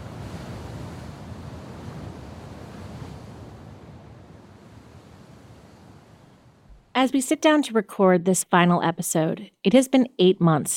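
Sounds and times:
gusty wind buffeting the microphone: 0:00.0 - 0:06.8
churning sea surf roaring: 0:00.0 - 0:07.1
speech: 0:07.0 - 0:10.7.

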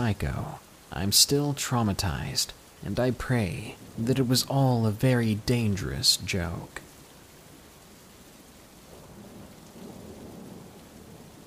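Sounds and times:
speech: 0:00.0 - 0:06.8
heavy rain in a thunderstorm: 0:00.0 - 0:11.4
low roll of thunder: 0:08.9 - 0:11.4.

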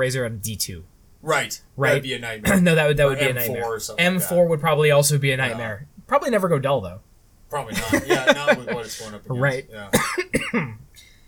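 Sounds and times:
speech: 0:00.0 - 0:10.8
laughter: 0:07.7 - 0:09.4
harsh coughs: 0:09.9 - 0:10.8.

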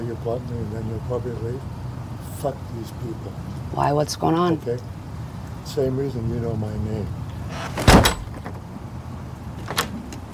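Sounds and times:
speech: 0:00.1 - 0:01.8, 0:02.4 - 0:05.0, 0:05.7 - 0:07.9
house door slamming shut: 0:07.5 - 0:08.6.

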